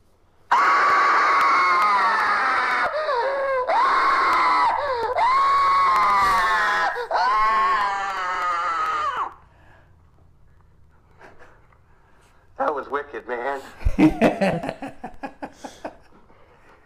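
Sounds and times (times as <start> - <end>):
male actors screaming in agony: 0.5 - 9.4
laughter: 13.7 - 16.2
speech: 14.0 - 14.2.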